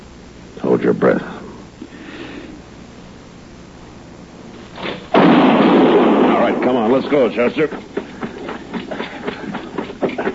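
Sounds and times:
speech: 0.8s - 1.4s, 7.0s - 7.9s
gunshot: 4.8s - 7.3s
laughter: 7.6s - 10.3s.

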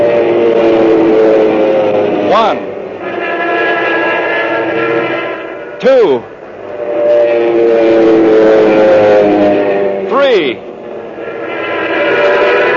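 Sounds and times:
RAF fighter plane engines droning over Malta: 0.0s - 12.7s
man counting aloud: 2.3s - 2.6s, 5.8s - 6.3s, 10.1s - 10.6s.

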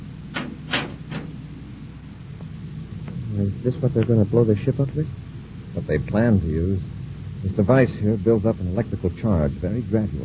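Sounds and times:
low steady hum: 0.0s - 10.2s
door pushed closed with knocking thuds: 0.3s - 1.5s
speech: 3.5s - 5.2s, 5.8s - 10.2s.

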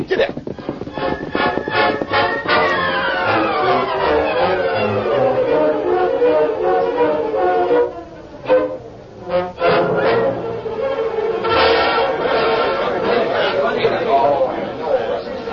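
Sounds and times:
speech: 0.0s - 0.5s
crowd of men, women and children murmuring chatter in a crowded courtroom: 0.4s - 9.0s, 9.6s - 15.5s.

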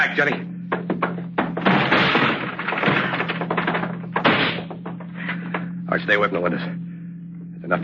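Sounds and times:
speech: 0.0s - 0.5s, 6.0s - 6.8s, 7.7s - 7.8s
locked wooden door being kicked in: 0.2s - 5.1s
rattling and scraping: 0.2s - 5.8s.

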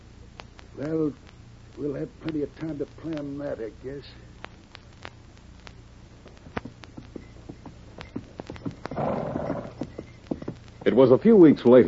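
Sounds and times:
speech: 0.8s - 4.3s, 11.0s - 11.8s
hooves of a horse ridden along a trail: 6.3s - 11.8s.

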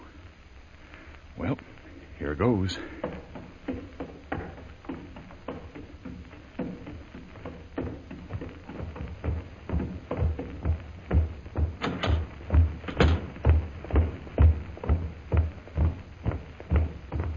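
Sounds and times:
speech: 1.4s - 3.2s
wooden knocks and thumps of a castle door: 2.8s - 17.3s
castle door being opened: 9.8s - 15.1s
rattling clicks of a castle door: 11.6s - 14.0s.

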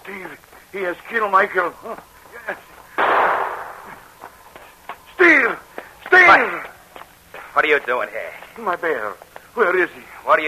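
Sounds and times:
speech: 0.1s - 2.7s, 7.6s - 10.4s
gunshot in an audio drama set by a mine: 3.0s - 4.0s.

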